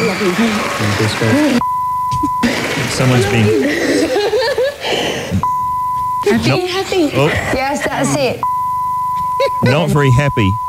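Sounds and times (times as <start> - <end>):
people chuckling: 0.0 - 8.4, 9.2 - 10.6
speech: 0.2 - 4.2, 6.3 - 8.6, 9.4 - 10.6
censor bleep: 1.6 - 2.5, 5.4 - 6.8, 8.4 - 10.6.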